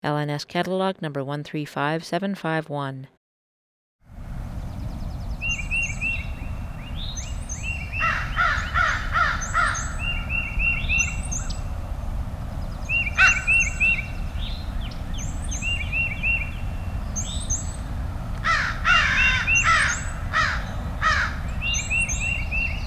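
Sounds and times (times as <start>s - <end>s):
speech: 0.0s - 3.2s
steady low rumble: 4.1s - 22.8s
four crows giving harsh guttural calls across an open field: 7.9s - 10.3s, 13.2s - 14.0s, 18.4s - 21.6s.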